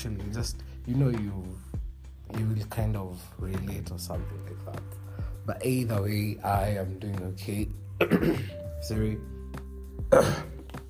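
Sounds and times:
speech: 0.0s - 9.4s, 10.1s - 10.5s
person clearing throat: 8.0s - 8.6s, 10.1s - 10.7s
person coughing: 8.0s - 8.6s, 10.1s - 10.7s.

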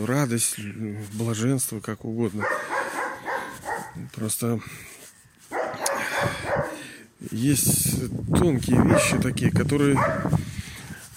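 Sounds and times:
speech: 0.0s - 2.8s, 4.0s - 4.9s, 7.2s - 10.5s
dog barking: 2.4s - 4.0s, 5.5s - 6.9s, 8.8s - 9.3s, 9.9s - 10.3s.

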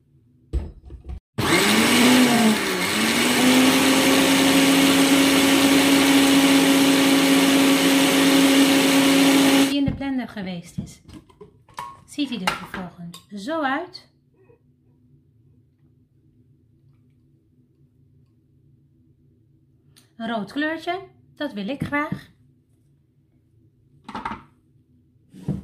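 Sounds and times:
blender whirring, blending ingredients: 1.4s - 9.8s
speech: 13.5s - 14.1s, 20.2s - 22.3s.

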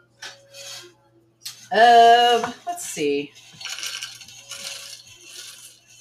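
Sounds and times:
speech: 1.7s - 3.7s
coffee grinder grinding toasted pumpkin seeds: 3.4s - 5.9s.

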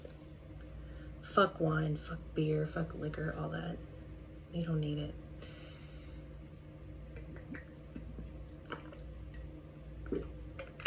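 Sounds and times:
low steady hum: 0.0s - 10.8s
speech: 1.3s - 3.9s, 4.5s - 5.5s
person drinking water from a plastic SodaStream soda bottle: 7.1s - 10.8s.

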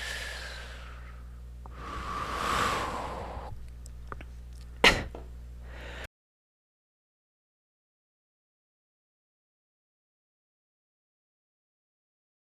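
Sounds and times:
deep breath drawn by a speaker who has a cold: 0.0s - 3.6s, 5.6s - 6.1s
steady low hum: 0.0s - 6.1s.

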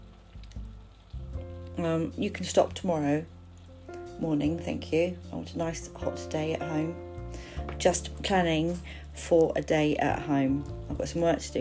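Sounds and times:
rain pattering on a hard surface: 0.0s - 11.5s
speech: 1.8s - 3.4s, 4.2s - 11.5s.

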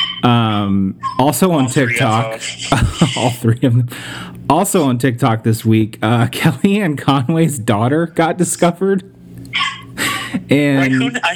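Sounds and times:
dogs whimpering and whining: 0.0s - 2.8s, 9.5s - 10.2s
laughter: 0.0s - 3.9s, 9.6s - 11.3s
speech: 0.2s - 9.7s, 10.5s - 11.3s.

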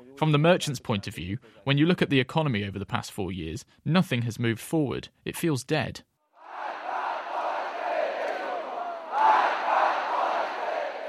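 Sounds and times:
speech: 0.2s - 6.8s
crowd of voters roaring and chanting at political rally: 6.4s - 11.0s
people shouting: 6.4s - 11.0s.

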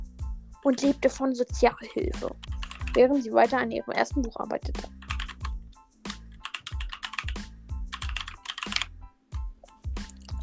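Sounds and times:
speech: 0.6s - 5.0s
typing on a computer keyboard: 2.4s - 3.0s, 5.0s - 5.5s, 6.4s - 8.9s.

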